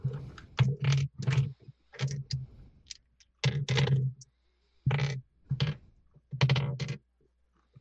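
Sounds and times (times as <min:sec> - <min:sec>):
several dice rolling on a hard wooden surface: 0:00.6 - 0:04.2, 0:04.9 - 0:07.0.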